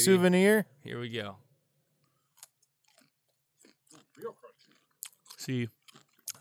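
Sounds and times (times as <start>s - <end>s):
speech: 0.0s - 1.4s, 4.2s - 4.4s, 5.4s - 5.8s
crunchy bite into a pickle spear: 2.0s - 6.3s.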